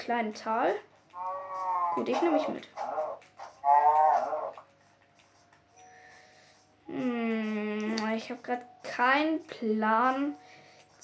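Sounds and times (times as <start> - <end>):
speech: 0.0 - 1.3, 1.9 - 3.0, 6.9 - 11.0
cow mooing in a small valley: 1.2 - 4.6.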